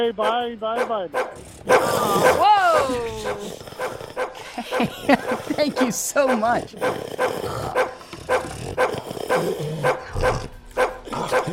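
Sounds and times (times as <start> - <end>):
speech: 0.0 - 7.9
hound dog barking: 0.1 - 11.5
laughter: 1.9 - 6.9.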